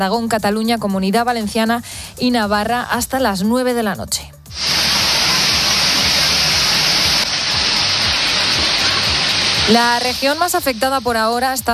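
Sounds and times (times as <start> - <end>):
speech: 0.0 - 4.7, 9.7 - 11.7
heavy rain pouring: 4.5 - 11.2
water rushing: 4.5 - 11.7.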